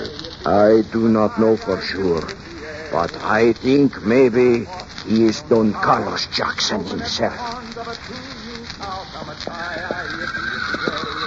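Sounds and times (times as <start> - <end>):
steady hiss of noise: 0.0 - 11.2
speech: 0.4 - 11.1
laughter: 9.2 - 11.2
horses neighing and whinnying: 9.8 - 11.2.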